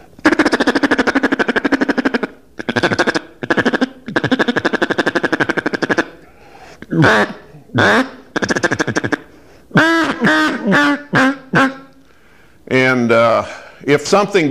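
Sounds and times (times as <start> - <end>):
loud nasal quacks blown on a duck call: 0.2 - 6.2, 6.8 - 11.9
buzzy clucking feeding chatter blown on a duck call: 0.2 - 12.0
speech: 7.0 - 8.1, 14.0 - 14.4.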